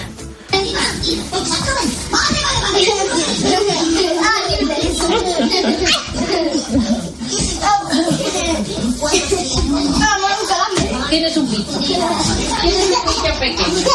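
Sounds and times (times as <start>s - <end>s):
children chattering and calling out in a family home: 0.0s - 13.9s
laughter: 2.2s - 10.0s, 11.6s - 13.9s.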